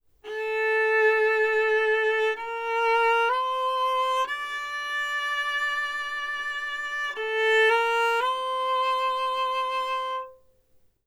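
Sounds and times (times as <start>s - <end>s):
viola playing in fourth position: 0.2s - 10.4s.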